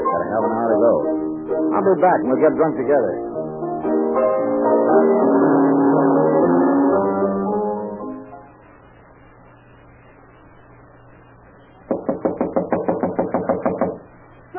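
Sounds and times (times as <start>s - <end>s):
sustained musical tones: 0.0s - 8.8s
speech: 0.3s - 4.3s, 5.0s - 5.6s
pounding on a door: 11.9s - 14.1s.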